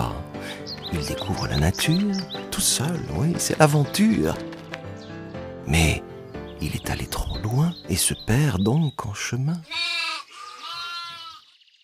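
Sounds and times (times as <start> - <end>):
speech: 0.9 - 4.5, 5.7 - 9.9
sheep bleating: 9.6 - 11.4.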